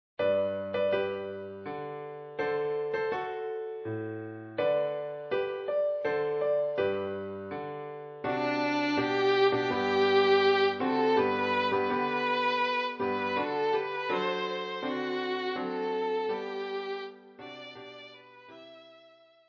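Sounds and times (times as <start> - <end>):
piano: 0.2 - 19.4
violin: 8.3 - 19.4.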